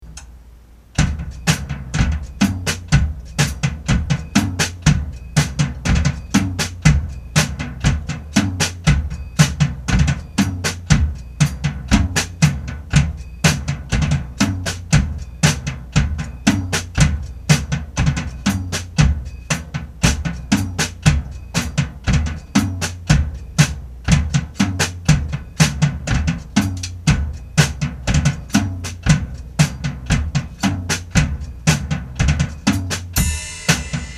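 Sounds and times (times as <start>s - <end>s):
soggy bass drum: 1.0s - 34.1s.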